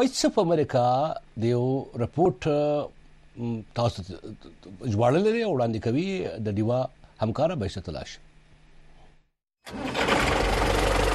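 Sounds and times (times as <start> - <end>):
speech: 0.0 - 8.3, 9.6 - 10.3
tractor engine starting and running: 9.6 - 11.1.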